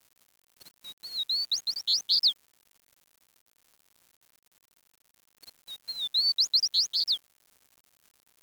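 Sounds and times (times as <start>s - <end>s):
bird song: 1.0s - 2.4s, 5.8s - 7.2s.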